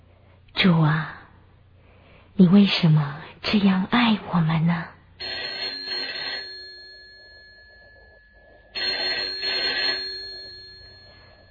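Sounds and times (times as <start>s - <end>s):
speech: 0.6s - 1.2s, 2.4s - 4.9s
telephone bell ringing: 5.2s - 11.5s.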